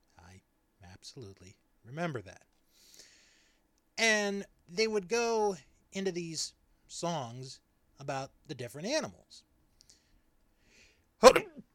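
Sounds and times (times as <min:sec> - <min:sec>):
speech: 0:01.0 - 0:03.0, 0:04.0 - 0:09.5, 0:11.2 - 0:11.5
person sneezing: 0:11.2 - 0:11.7.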